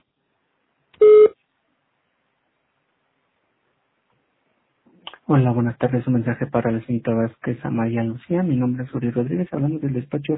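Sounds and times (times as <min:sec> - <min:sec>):
voicemail recording tone on a telephone line: 0:01.0 - 0:01.3
speech: 0:05.3 - 0:10.3.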